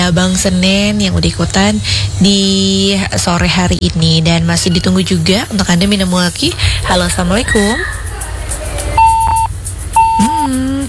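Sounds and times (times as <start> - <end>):
speech: 0.0 - 8.0
low hum: 0.0 - 10.8
electronic beeps of a telephone line disconnecting during a radio call-in: 9.0 - 10.5.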